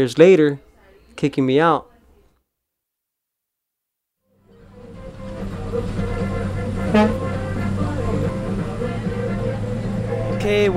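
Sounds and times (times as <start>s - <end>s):
speech: 0.0s - 0.6s, 1.2s - 1.9s, 6.9s - 7.2s, 10.5s - 10.7s
large old former school bus engine rumbling: 4.5s - 10.7s.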